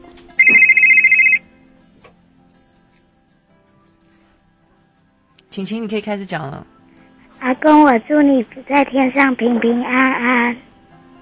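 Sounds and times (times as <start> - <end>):
telephone ringtone electronic tone: 0.4 - 1.4
speech: 5.6 - 6.8, 7.5 - 10.7.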